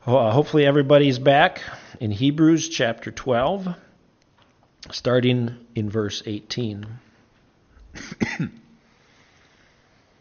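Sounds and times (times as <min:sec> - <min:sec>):
speech: 0:00.1 - 0:03.8, 0:04.8 - 0:07.0, 0:07.9 - 0:08.6
throat clearing: 0:07.9 - 0:08.7
person coughing: 0:08.0 - 0:08.8.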